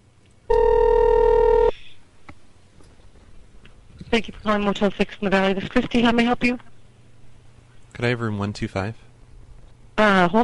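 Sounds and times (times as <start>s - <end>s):
faint noise: 0.0s - 10.4s
telephone tone buzz: 0.5s - 1.8s
speech: 4.1s - 6.7s, 8.0s - 9.1s, 10.0s - 10.4s.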